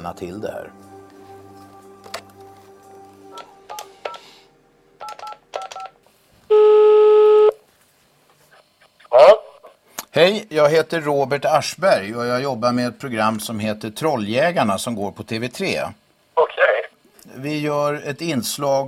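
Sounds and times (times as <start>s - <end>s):
speech: 0.0s - 0.9s, 10.2s - 16.0s, 17.4s - 18.8s
telephone ringing tone: 3.0s - 7.6s
touch-tone keypad beeps on a telephone: 3.4s - 4.2s, 5.0s - 6.0s.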